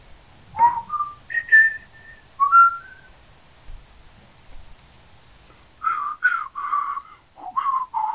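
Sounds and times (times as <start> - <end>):
person whistling a short wandering tune: 0.6 - 3.1, 5.8 - 8.1.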